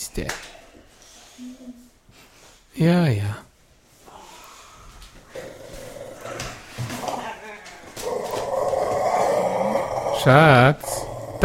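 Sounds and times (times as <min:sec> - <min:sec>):
speech: 0:00.2 - 0:00.5, 0:02.8 - 0:03.5, 0:10.2 - 0:11.4
dog growling: 0:05.3 - 0:07.4, 0:08.0 - 0:11.4.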